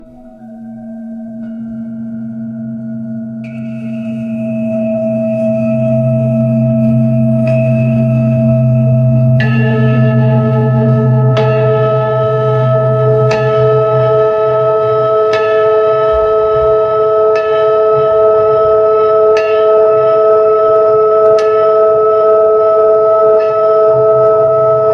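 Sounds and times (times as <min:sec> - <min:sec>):
ambient meditation music: 0:00.0 - 0:24.9.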